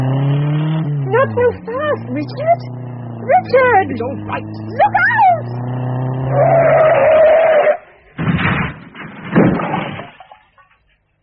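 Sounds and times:
car tires squealing in a skid: 0:00.0 - 0:08.2
speech: 0:01.3 - 0:06.9
car crash: 0:06.3 - 0:11.0.

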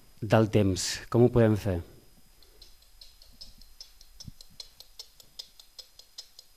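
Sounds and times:
speech: 0:00.2 - 0:01.9
antique mechanical clock ticking: 0:02.4 - 0:06.5.

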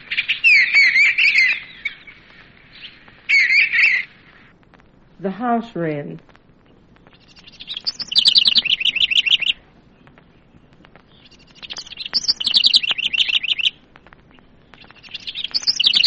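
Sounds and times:
Eastern Bluebird singing in bright warbling bursts: 0:00.0 - 0:04.4, 0:06.6 - 0:16.0
speech: 0:05.2 - 0:06.3.

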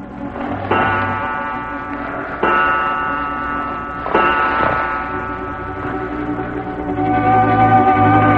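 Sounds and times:
clock chiming the hour: 0:00.0 - 0:08.3
clock ticking: 0:00.5 - 0:06.6.

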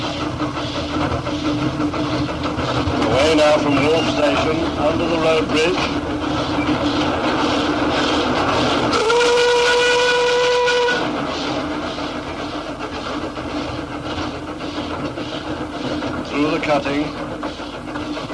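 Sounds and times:
steam locomotive chuffing and rumbling: 0:00.0 - 0:18.3
steam locomotive whistle: 0:08.9 - 0:11.1.

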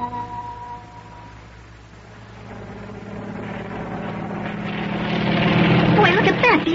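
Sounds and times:
helicopter flying overhead: 0:01.9 - 0:06.7.

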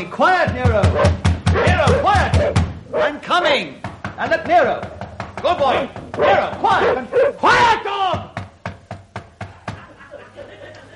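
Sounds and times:
speech: 0:00.0 - 0:01.2, 0:01.8 - 0:08.2
knocking on a door: 0:00.4 - 0:02.8, 0:03.8 - 0:07.1, 0:08.0 - 0:09.9
laughter: 0:09.5 - 0:10.9.

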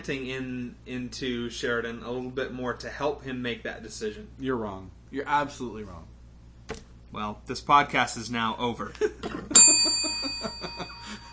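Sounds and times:
speech: 0:00.0 - 0:06.1, 0:06.7 - 0:11.2
single bright metallic ending bell ding: 0:09.5 - 0:11.3.

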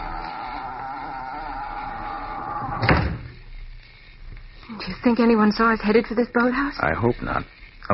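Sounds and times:
door shutting: 0:02.6 - 0:03.4
speech: 0:05.0 - 0:07.9.

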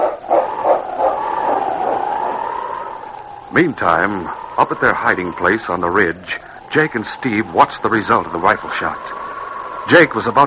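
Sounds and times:
massive dog barking: 0:00.0 - 0:02.5
massive dog drawn-out whining bark: 0:00.0 - 0:03.0
speech: 0:03.5 - 0:09.1, 0:09.8 - 0:10.4.

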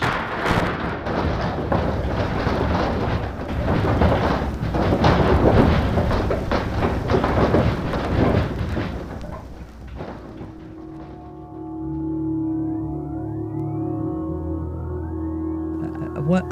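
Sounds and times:
deep loud earthquake rumble with crashing and shaking: 0:00.0 - 0:13.2
steady droning hum: 0:00.0 - 0:16.5
faint rising whines: 0:11.7 - 0:16.5.

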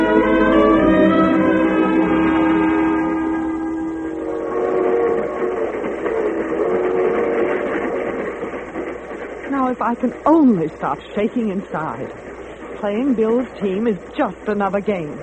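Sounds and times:
loud sustained train horn blaring: 0:00.0 - 0:09.1
train rolling along rails with steady rumbling clatter: 0:00.0 - 0:15.2
speech: 0:09.9 - 0:15.2.

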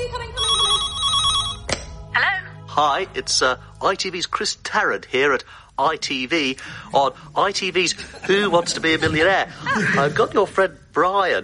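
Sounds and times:
old-style telephone bell ringing: 0:00.4 - 0:01.7
speech: 0:02.8 - 0:11.4
laughter: 0:07.9 - 0:10.6.

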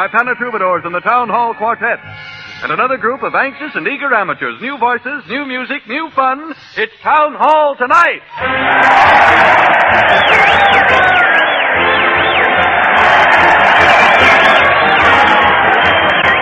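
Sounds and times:
speech: 0:00.0 - 0:11.3
crowd cheering and shouting: 0:08.3 - 0:16.4
whistles and whoops: 0:08.3 - 0:16.4.

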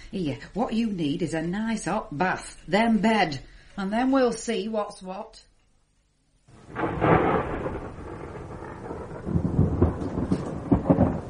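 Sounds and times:
speech: 0:00.1 - 0:05.5
rolling thunder of a thunderstorm: 0:06.5 - 0:11.2.

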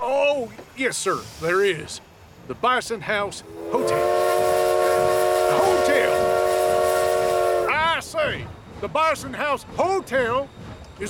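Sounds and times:
constant hiss of steam from steam train: 0:00.0 - 0:08.6
speech: 0:00.4 - 0:04.2, 0:08.2 - 0:11.0
steam train whistle as the train pulls out of a town: 0:03.4 - 0:08.2.

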